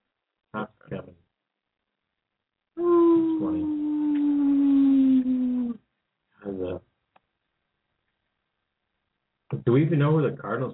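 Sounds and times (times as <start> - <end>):
dog howling: 2.8 - 5.8
speech: 9.7 - 10.7.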